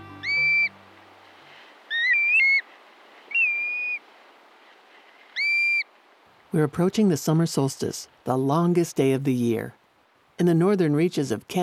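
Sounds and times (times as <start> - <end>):
steady hiss: 0.0 - 11.6
black-bellied plover giving plaintive whistled calls: 0.1 - 0.8, 1.9 - 2.7, 3.3 - 4.0, 5.4 - 5.9
speech: 6.5 - 9.8, 10.4 - 11.6.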